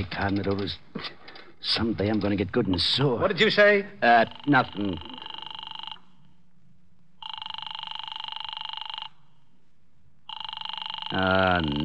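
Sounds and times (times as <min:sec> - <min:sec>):
speech: 0:00.0 - 0:05.1, 0:11.1 - 0:11.8
telephone ringing in long buzzing bursts: 0:04.0 - 0:06.4, 0:07.2 - 0:09.4, 0:10.2 - 0:11.8.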